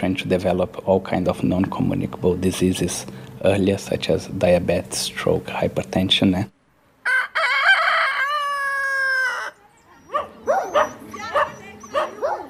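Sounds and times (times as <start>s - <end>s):
speech: 0.0s - 6.6s
rooster crowing: 7.0s - 9.6s
stray dogs barking: 10.0s - 12.4s.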